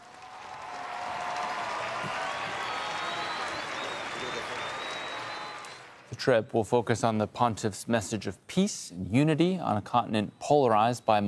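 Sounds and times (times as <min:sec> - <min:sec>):
high whistles from a crowd: 0:00.0 - 0:06.2
huge crowd cheering and applauding the Pope in Madrid Spain: 0:00.0 - 0:06.2
crowd voices rising above clapping: 0:00.0 - 0:07.9
speech: 0:06.2 - 0:11.2.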